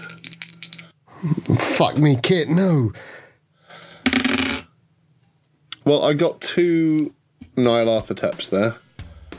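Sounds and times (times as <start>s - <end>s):
dice tumbling across a hard tabletop: 0.0s - 0.9s, 4.0s - 4.7s
speech: 1.2s - 3.2s, 5.8s - 8.8s.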